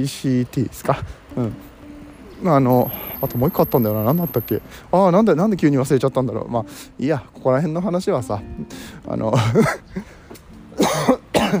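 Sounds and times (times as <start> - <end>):
speech: 0.0 - 1.7, 2.4 - 10.1
coughing after choking: 9.4 - 9.9, 10.8 - 11.5.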